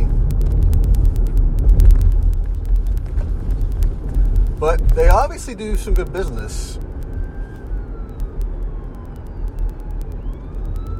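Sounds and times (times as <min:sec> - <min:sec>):
heavy continuous rumble of street traffic: 0:00.0 - 0:10.9
ambulance siren wailing: 0:04.6 - 0:10.9
speech: 0:05.0 - 0:06.9.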